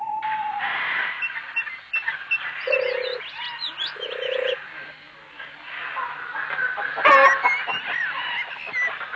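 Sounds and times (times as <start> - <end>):
bird squawk in an aviary: 0.0 - 4.6, 7.0 - 9.1
birds honking and croaking in an aviary: 0.0 - 9.1.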